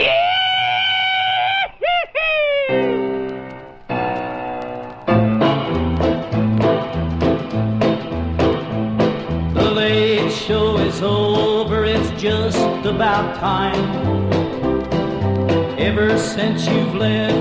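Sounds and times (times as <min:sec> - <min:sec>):
rebel yell whoops and yelps from one voice: 0:00.0 - 0:03.0
rhythmic music track with a steady beat: 0:03.0 - 0:17.3
speech: 0:12.2 - 0:14.4, 0:15.8 - 0:17.3.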